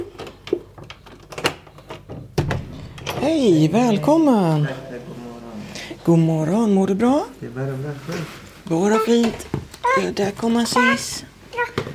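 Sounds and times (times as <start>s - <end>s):
door thump and rattle: 2.0s - 3.4s
speech: 3.2s - 4.9s, 6.0s - 11.3s.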